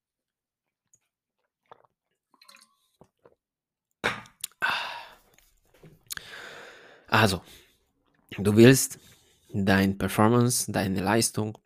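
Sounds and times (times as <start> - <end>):
sipping and swallowing water: 0.7 - 9.5
breathy gasp after a gulp: 4.6 - 5.3, 6.2 - 7.7
speech: 7.1 - 7.6, 8.4 - 11.6.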